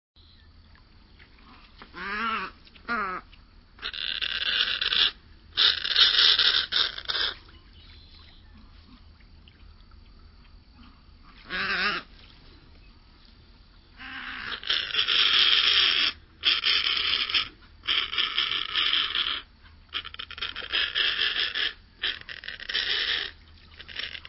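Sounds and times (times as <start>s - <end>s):
snowy egret calling: 1.9s - 8.5s, 11.4s - 12.1s, 13.9s - 24.2s.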